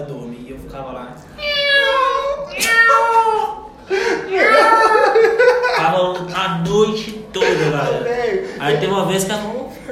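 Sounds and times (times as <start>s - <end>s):
speech: 0.7s - 1.5s, 5.9s - 9.9s
person imitating cat meows: 1.4s - 3.6s
laughter: 2.6s - 9.2s.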